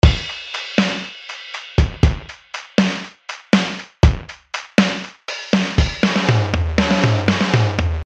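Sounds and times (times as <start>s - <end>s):
drums recorded with an omni microphone: 0.0s - 8.0s.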